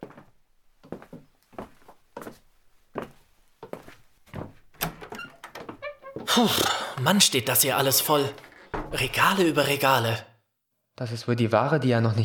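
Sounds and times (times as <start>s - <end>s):
dull wooden thunks and knocks: 4.3s - 6.4s, 8.4s - 9.1s
door to the back of a shop opening and swinging shut: 4.4s - 6.9s, 8.0s - 9.3s
speech: 6.4s - 10.3s, 11.0s - 12.2s.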